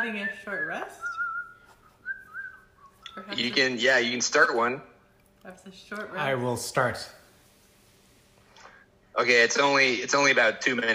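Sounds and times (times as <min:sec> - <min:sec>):
speech: 0:00.0 - 0:01.2, 0:03.2 - 0:07.2, 0:09.2 - 0:10.9
person whistling a jaunty tune: 0:00.0 - 0:03.3.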